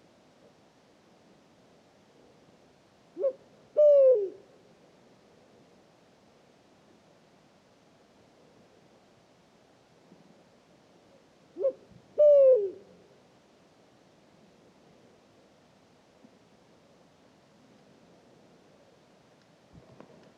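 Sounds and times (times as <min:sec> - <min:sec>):
low hiss: 0:00.0 - 0:20.3
Pharaoh eagle-owl Bubo ascalaphus hooting in Mauritania: 0:03.2 - 0:04.4, 0:11.6 - 0:12.9.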